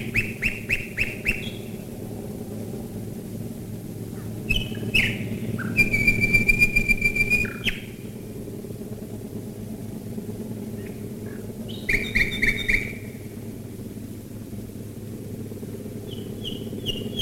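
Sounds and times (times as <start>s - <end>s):
Common nightingale singing: 0.0s - 1.8s, 4.5s - 8.0s, 11.7s - 13.1s, 16.0s - 17.1s
low engine drone of bombers flying overhead: 0.0s - 17.1s.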